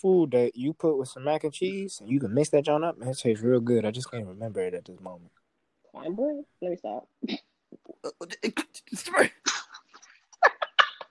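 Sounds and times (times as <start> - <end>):
speech: 0.0 - 5.4, 6.0 - 9.6
person sneezing: 9.4 - 9.8.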